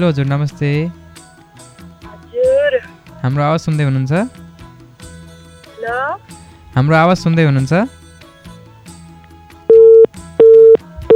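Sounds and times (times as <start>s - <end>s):
speech: 0.0s - 1.0s, 2.7s - 4.4s, 5.8s - 8.0s
busy signal from a phone call that failed to connect: 9.7s - 11.1s.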